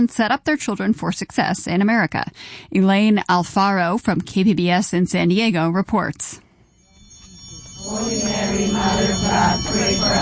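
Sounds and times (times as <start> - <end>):
speech: 0.0 - 6.4, 7.8 - 10.2
church bells ringing: 6.8 - 10.2.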